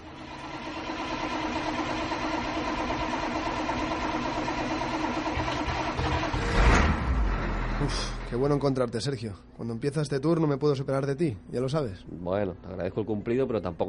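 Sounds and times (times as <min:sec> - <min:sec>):
large bus engine starting, idling and revving: 0:00.0 - 0:08.5
speech: 0:07.9 - 0:13.8.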